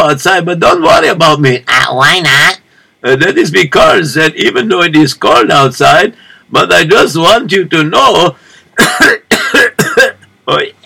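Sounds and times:
speech: 0.0 - 9.3, 10.5 - 10.8
person clearing throat: 8.8 - 10.8.

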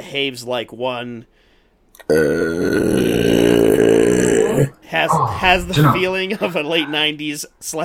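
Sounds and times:
speech: 0.1 - 4.2, 4.9 - 7.8
long deep gravelly belch: 2.1 - 7.0.

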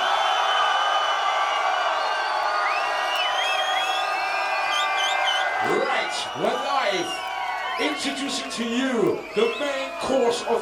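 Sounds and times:
large crowd screaming and cheering at a live event in Newcastle: 0.0 - 10.6
high shrieks and whistle-like cries: 2.0 - 8.2, 9.2 - 10.3
speech: 6.1 - 10.6.

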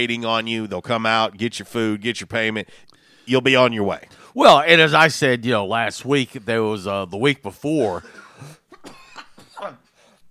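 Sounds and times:
speech: 0.0 - 8.6
person coughing: 8.0 - 10.1.

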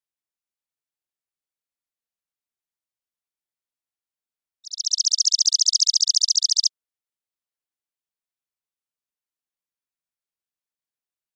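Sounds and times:
Chipping sparrow Spizella passerina trilling song: 4.6 - 6.7.

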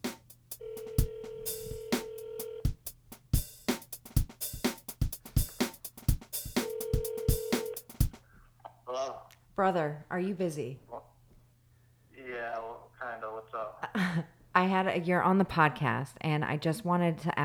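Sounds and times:
looping electronic beat with sharp clicks: 0.0 - 8.2
phone ringback tone while calling: 0.6 - 2.6, 6.6 - 7.8
speech: 8.9 - 10.9, 14.6 - 17.4.

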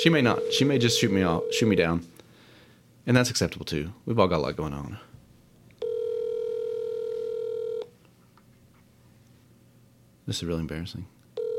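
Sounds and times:
electronic ring tone of an outgoing phone call: 0.0 - 1.9, 5.8 - 7.9, 11.4 - 11.5
speech: 0.0 - 2.1, 3.1 - 5.1, 10.3 - 11.1
faint hiss: 0.0 - 11.5.

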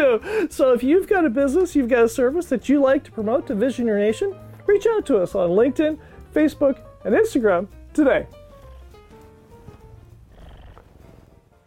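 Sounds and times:
speech: 0.1 - 8.4
cat purring: 9.5 - 11.6.

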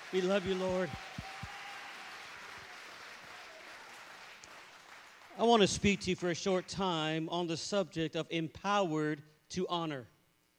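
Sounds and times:
large audience clapping in praise: 0.0 - 6.8
speech: 0.1 - 1.1, 5.4 - 10.1.

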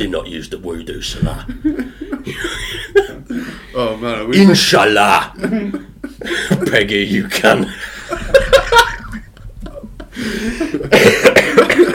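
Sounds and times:
speech: 0.0 - 2.8, 3.8 - 7.9
laughter: 1.2 - 3.7, 5.3 - 11.9
throaty breathing: 1.8 - 3.8, 10.0 - 10.9
harsh hoarse coughing: 2.3 - 3.6, 10.6 - 11.9.

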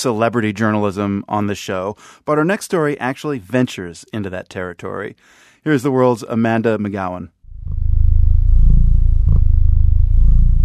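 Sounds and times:
speech: 0.0 - 7.4
domestic cat purring: 7.6 - 10.6.

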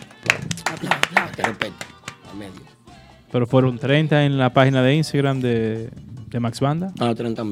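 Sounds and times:
sharp hand claps: 0.0 - 2.4
speech: 0.8 - 7.5.

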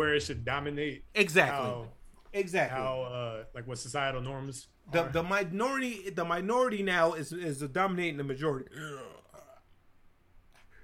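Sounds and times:
speech: 0.0 - 9.2
throaty burp: 8.7 - 9.7.

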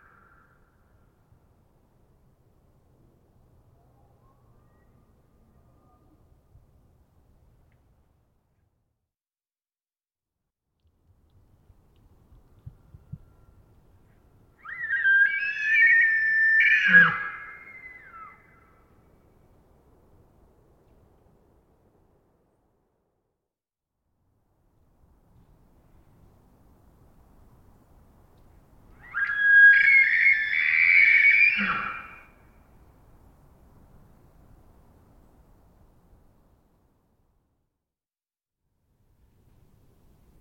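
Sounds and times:
elk screams with a low grunting undertone: 14.6 - 18.4, 29.0 - 32.3.

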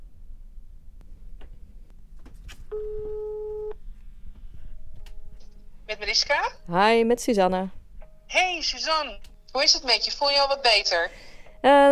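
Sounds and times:
low hiss: 0.0 - 11.9
ringback tone of an outgoing phone call: 2.7 - 3.8
speech: 6.0 - 11.9.

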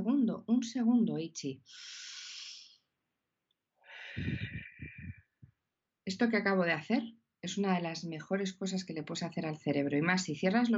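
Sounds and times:
speech: 0.6 - 2.1, 4.2 - 4.4, 6.1 - 10.7
deliberate deep breath in and out: 1.7 - 2.8, 3.8 - 5.2.

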